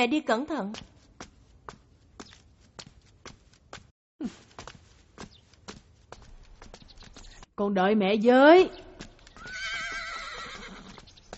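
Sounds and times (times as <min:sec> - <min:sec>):
speech: 0:00.0 - 0:00.9, 0:04.2 - 0:04.4, 0:07.6 - 0:08.8
horse hooves clip-clopping: 0:00.7 - 0:03.9, 0:04.5 - 0:07.5, 0:08.8 - 0:11.3
horse neighing: 0:09.4 - 0:11.0.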